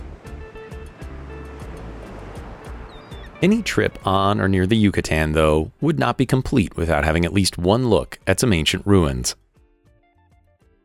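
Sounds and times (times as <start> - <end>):
ocean waves washing over a reef: 0.0 - 4.2
faint rush of wind: 0.0 - 5.6
speech: 3.4 - 9.4.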